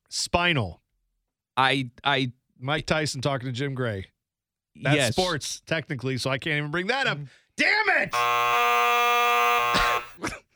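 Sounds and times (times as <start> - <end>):
speech: 0.1 - 0.8, 1.6 - 4.1, 4.8 - 10.4
loud harsh studio buzzer: 8.1 - 10.2.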